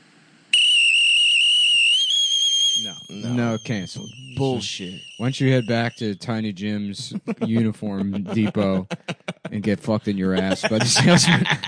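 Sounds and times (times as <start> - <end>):
person whistling a loud shrill sustained note attempting a trill: 0.6 - 6.3
speech: 2.8 - 11.6
laughter: 3.1 - 11.6.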